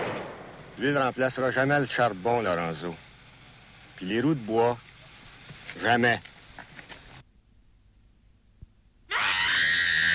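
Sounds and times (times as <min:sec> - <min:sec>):
speech: 0:00.8 - 0:03.0, 0:04.0 - 0:04.9, 0:05.8 - 0:06.3
woman screaming: 0:09.1 - 0:10.1.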